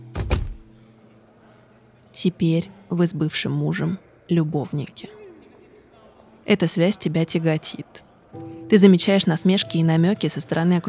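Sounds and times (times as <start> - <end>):
door slamming shut: 0.1 - 0.6
speech: 2.2 - 5.2, 6.5 - 10.8.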